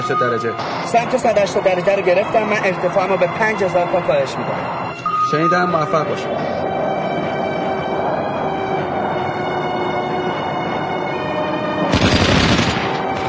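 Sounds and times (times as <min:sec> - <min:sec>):
speech: 0:00.0 - 0:06.6
steady droning hum of a plane on a combat mission: 0:00.6 - 0:11.9
anti-aircraft guns firing at a plane: 0:11.9 - 0:13.1.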